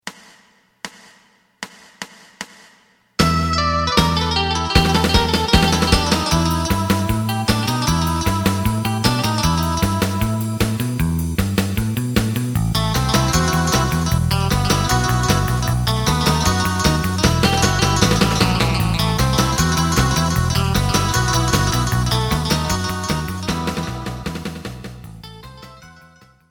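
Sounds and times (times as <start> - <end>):
side guitar: 3.2 - 26.4.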